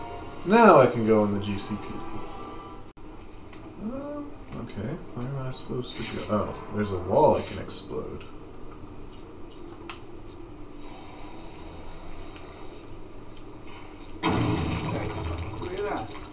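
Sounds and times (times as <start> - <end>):
speech: 0.4 - 2.3, 4.7 - 8.4
steady hiss of spraying water: 10.7 - 12.9, 14.0 - 16.3
water pipe bursting: 14.2 - 16.3.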